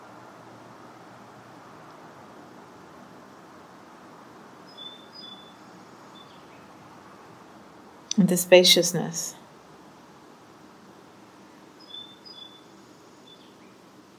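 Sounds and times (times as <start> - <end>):
bird chirps: 4.7 - 6.6, 11.8 - 13.8
speech: 8.2 - 9.4.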